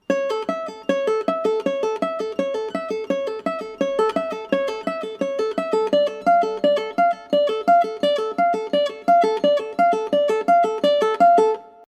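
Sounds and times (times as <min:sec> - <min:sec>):
slow ukulele playing: 0:00.0 - 0:11.8.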